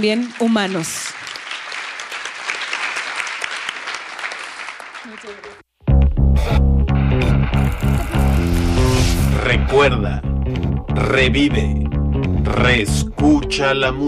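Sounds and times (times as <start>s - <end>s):
speech: 0.0s - 1.2s, 9.6s - 10.3s, 11.0s - 11.8s, 12.4s - 14.0s
audience applause: 0.0s - 5.6s, 7.1s - 9.3s
loud music with strong bass and sustained tones: 6.0s - 11.2s.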